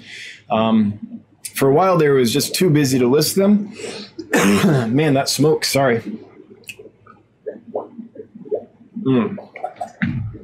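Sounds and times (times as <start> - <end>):
speech: 0.5 - 6.3, 9.0 - 9.5
person drinking water with gulps and slurps: 6.0 - 10.4.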